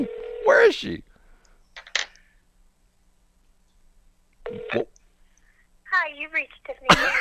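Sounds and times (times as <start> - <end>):
telephone ringing heard through a phone line: 0.0 - 0.6, 4.4 - 4.8
speech: 0.0 - 1.1, 6.1 - 7.1.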